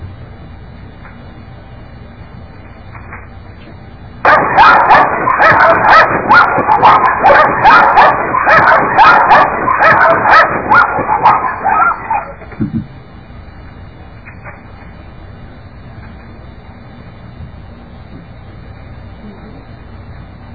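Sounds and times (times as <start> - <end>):
dog yipping, barking and whimpering: 4.3 - 12.5.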